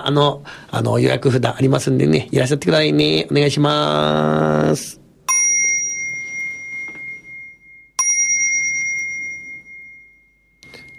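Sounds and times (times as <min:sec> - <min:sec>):
speech: 0:00.0 - 0:05.0
temple bell being struck: 0:05.3 - 0:10.9.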